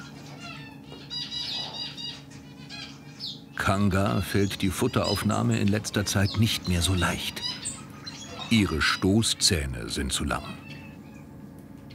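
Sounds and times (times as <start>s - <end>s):
tropical bird chirps and squeaks: 0.0s - 3.5s, 7.4s - 8.5s
low hum: 0.0s - 11.9s
speech: 3.6s - 7.4s, 8.5s - 10.6s.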